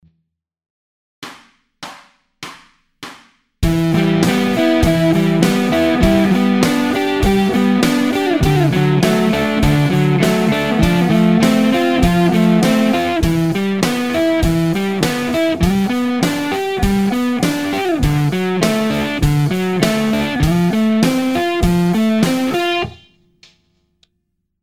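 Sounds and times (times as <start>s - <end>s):
guitar riff: 3.6s - 23.2s.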